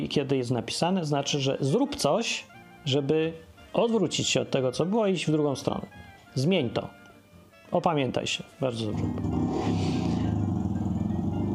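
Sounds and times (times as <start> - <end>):
speech: 0.0 - 7.0, 7.7 - 9.4
motorcycle engine idling outside: 8.9 - 11.5.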